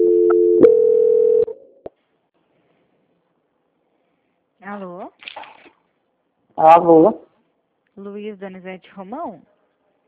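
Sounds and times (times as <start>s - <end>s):
telephone call-transfer tones: 0.0s - 1.6s
speech: 6.6s - 7.2s, 8.0s - 9.6s.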